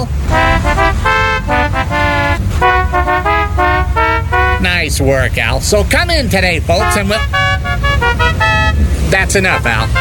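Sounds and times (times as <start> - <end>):
steady low car engine rumble: 0.0 - 9.9
novelty car horn honking a bouncy musical tune: 0.2 - 4.9, 6.7 - 9.9
speech: 4.9 - 8.5, 9.1 - 9.9.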